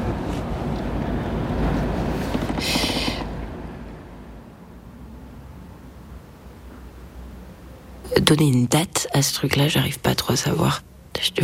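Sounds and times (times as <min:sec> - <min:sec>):
large four-deck passenger ferry engines rumbling on open water: 0:00.0 - 0:10.5
rushing hissing spray: 0:02.5 - 0:03.3
speech: 0:08.3 - 0:11.4.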